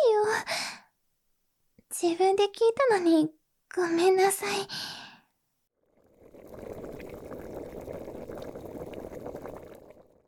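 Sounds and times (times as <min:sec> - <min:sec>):
speech: 0:02.0 - 0:04.9
water boiling on a stove: 0:05.8 - 0:10.2.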